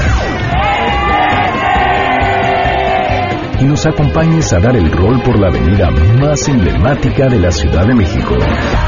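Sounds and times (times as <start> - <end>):
large crowd shouting together: 0.4 - 3.6
speech: 3.6 - 8.8.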